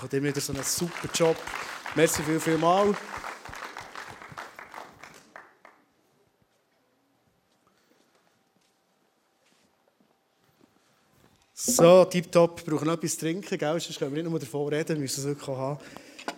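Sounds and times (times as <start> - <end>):
speech: 0.0 - 3.3, 11.7 - 16.3
audience applause: 0.0 - 5.9.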